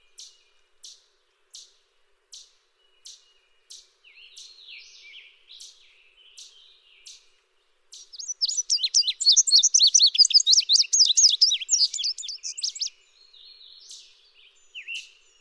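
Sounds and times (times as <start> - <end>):
Indigo bunting (Passerina cyanea) giving sharp high chip calls: 8.0 - 12.9.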